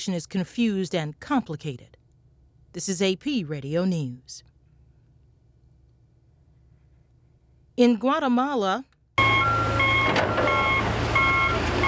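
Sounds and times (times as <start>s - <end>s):
speech: 0.0s - 2.0s, 2.8s - 4.5s, 7.8s - 8.9s
reversing beeps from heavy machinery removing dirt: 9.2s - 11.8s.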